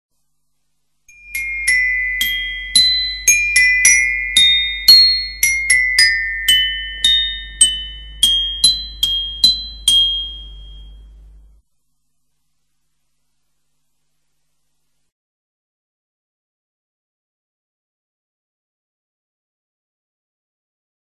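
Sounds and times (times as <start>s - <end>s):
glockenspiel percussion: 1.1s - 11.5s.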